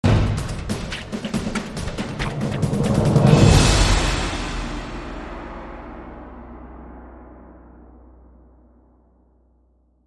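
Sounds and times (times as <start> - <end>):
fast-paced drums: 0.0 - 6.0.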